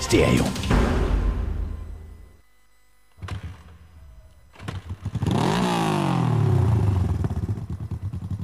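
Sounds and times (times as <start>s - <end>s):
speech: 0.1s - 0.6s
engine starting and revving: 4.5s - 8.3s.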